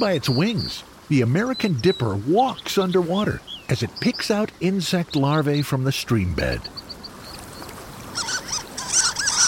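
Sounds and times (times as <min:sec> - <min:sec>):
speech: 0:00.0 - 0:06.8
faint steady hiss: 0:00.0 - 0:09.4
harlequin duck calls: 0:08.1 - 0:09.4.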